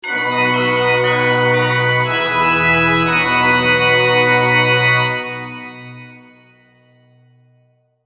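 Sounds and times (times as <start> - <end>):
organ jingle: 0.0 - 7.3.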